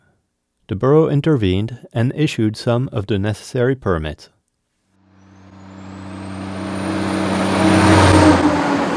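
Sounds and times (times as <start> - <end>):
speech: 0.7 - 4.4
faint high whine: 5.0 - 8.3
heavy truck rumbling past on the truck route in Haines: 5.0 - 8.9.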